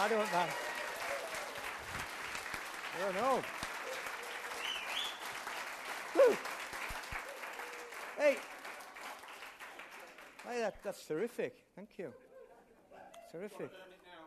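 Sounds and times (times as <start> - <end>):
speech: 0.0 - 0.7, 3.0 - 3.6, 6.1 - 6.5, 8.2 - 8.5, 10.4 - 12.2, 13.3 - 13.9
audience whooping and shouting: 0.0 - 1.8, 6.1 - 6.5
audience applause: 0.0 - 10.8.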